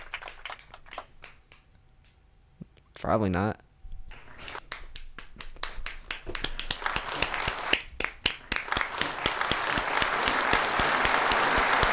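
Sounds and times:
audience applause: 0.0s - 1.4s, 5.6s - 11.9s
speech: 3.0s - 3.6s.

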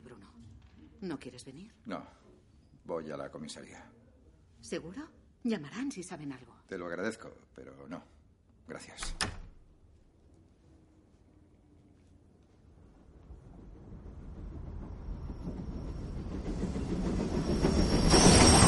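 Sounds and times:
speech: 1.0s - 2.2s, 2.9s - 4.0s, 4.6s - 9.4s
train pulling into a station and stopping: 12.6s - 18.6s
train wheel squeal: 13.9s - 18.6s.

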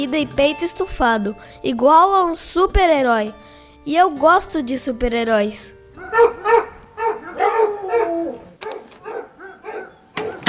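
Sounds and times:
speech: 0.0s - 6.7s
dogs barking and yelping: 6.0s - 10.4s.

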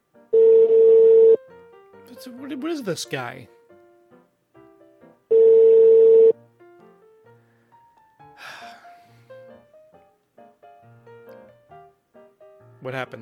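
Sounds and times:
telephone ringing with electronic tone: 0.3s - 1.4s, 5.3s - 6.4s
speech: 2.2s - 3.6s
brief breathy rush: 8.4s - 9.5s.

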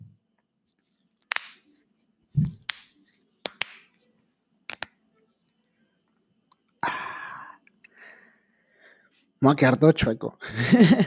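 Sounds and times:
finger knuckles cracking: 2.4s - 3.9s, 4.7s - 5.0s
speech: 9.4s - 11.0s.

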